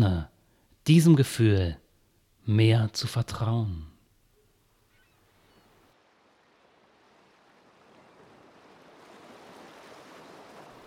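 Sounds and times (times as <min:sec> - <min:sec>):
speech: 0:00.0 - 0:01.8, 0:02.4 - 0:03.9
ocean surf rolling onto a beach: 0:06.0 - 0:10.8.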